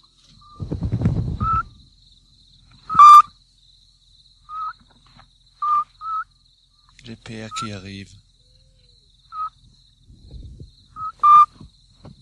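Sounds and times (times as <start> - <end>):
mother scops owl giving whistled notes at the nest: 1.4 - 1.7, 2.9 - 3.3, 4.5 - 4.8, 5.6 - 6.3, 9.3 - 9.6, 11.0 - 11.6
speech: 7.3 - 8.3.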